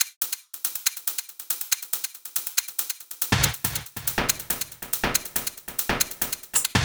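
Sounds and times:
top loop at 140 BPM: 3.3 - 6.8.

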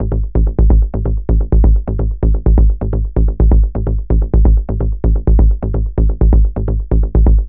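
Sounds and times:
melodic techno bass loop at 128: 0.0 - 7.4.

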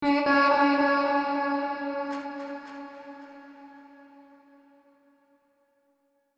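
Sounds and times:
vocals in E: 0.0 - 4.8.

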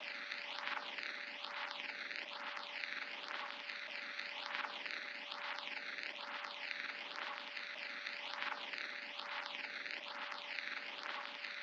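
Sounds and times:
destroyed crackled lo-fi noise: 0.0 - 11.6.

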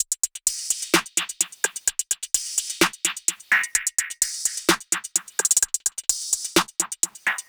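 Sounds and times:
percussion loop: 0.0 - 7.4.

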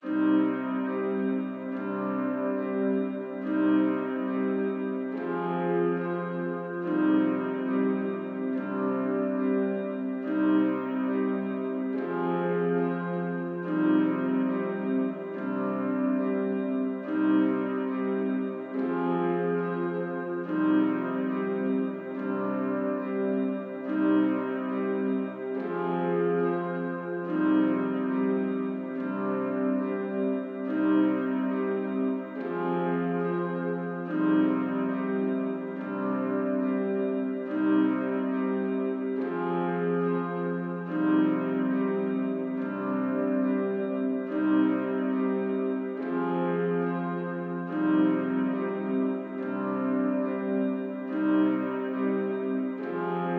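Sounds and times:
piano in C minor: 0.0 - 53.3.

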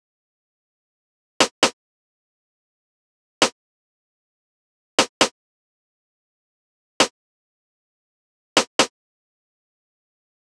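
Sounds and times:
garage percussion drum loop: 1.4 - 1.7, 8.6 - 8.9.

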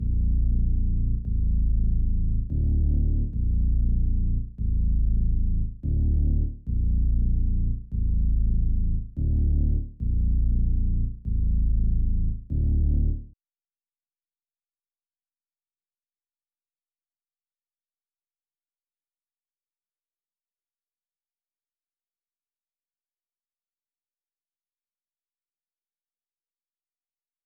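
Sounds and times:
bass melody loop in D minor: 0.0 - 13.3.

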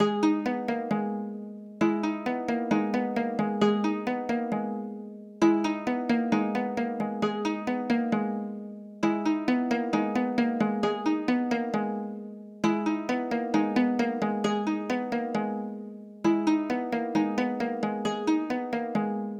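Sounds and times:
harp playing in G sharp minor world style: 0.0 - 19.3.

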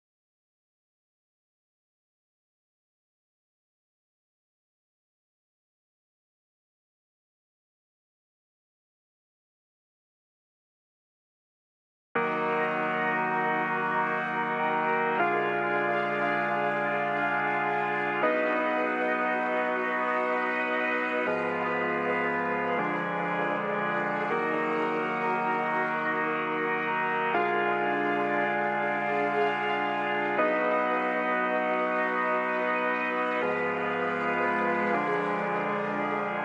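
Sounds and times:
hip hop chord melody loop: 12.2 - 36.4.

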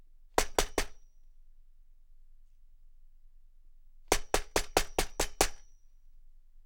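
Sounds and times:
knocks on flimsy metal trailer: 0.4 - 1.0, 4.1 - 5.7.

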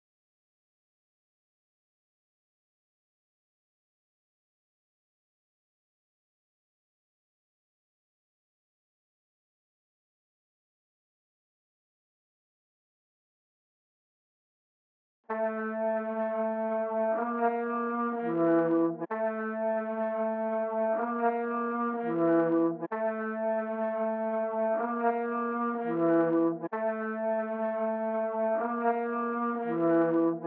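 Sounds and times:
trumpet loop in D minor: 15.3 - 30.4.

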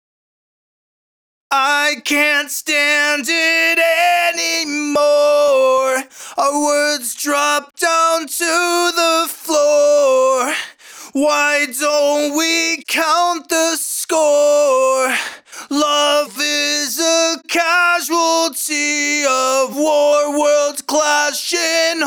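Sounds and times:
heavy dry main vocal: 1.5 - 22.0.

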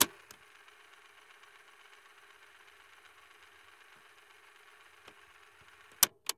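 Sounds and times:
cassette deck rewinding: 0.0 - 6.2.

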